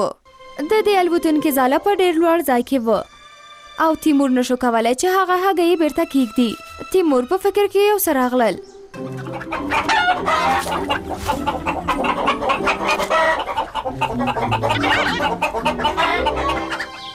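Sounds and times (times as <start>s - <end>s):
speech: 0.0s - 3.1s, 3.8s - 9.2s, 9.8s - 16.8s
hens clucking: 8.5s - 17.1s.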